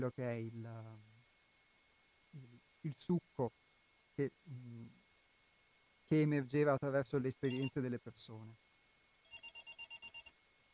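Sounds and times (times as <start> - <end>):
speech: 0.0 - 1.1, 2.3 - 3.6, 4.2 - 5.0, 6.1 - 8.6
faint hiss: 0.0 - 10.7
telephone ringing with rapid high electronic pulses: 7.5 - 7.8, 9.2 - 10.3.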